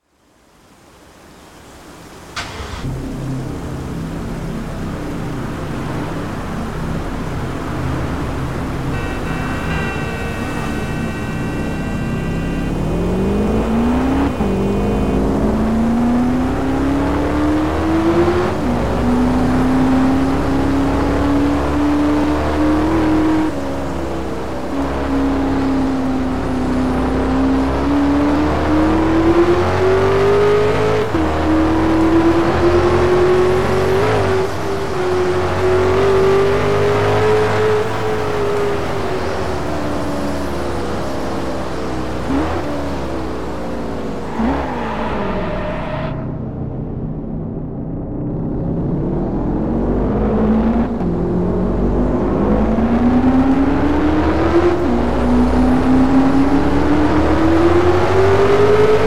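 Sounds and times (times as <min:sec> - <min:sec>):
BMW X5 Hamann car: 0:00.0 - 0:59.0.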